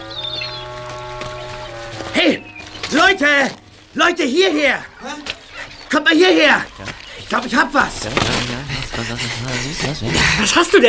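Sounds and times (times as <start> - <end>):
seagulls screeching as they fly up: 0.0 - 7.9
steady low hum: 0.0 - 10.8
laughter: 2.1 - 10.8
speech: 3.1 - 5.3, 5.9 - 10.8.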